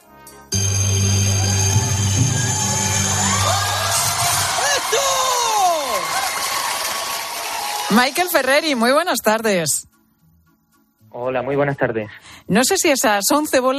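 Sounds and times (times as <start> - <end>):
crowd applauding: 0.6 - 9.1
crowd whoops: 1.3 - 8.0
speech: 7.9 - 9.9, 11.1 - 13.7.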